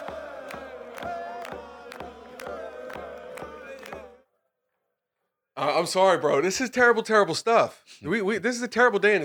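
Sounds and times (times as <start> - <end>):
steady drumbeat: 0.0 - 4.2
teenagers doing a school chant in unison: 0.0 - 4.3
speech: 5.6 - 9.2.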